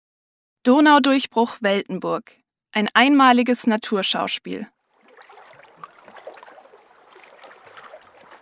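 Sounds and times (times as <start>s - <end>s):
speech: 0.6s - 4.8s
gentle river water babbling and trickling: 4.8s - 8.3s.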